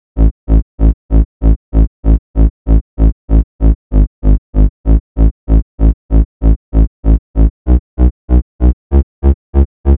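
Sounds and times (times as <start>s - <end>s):
TEK bass: 0.0s - 9.9s.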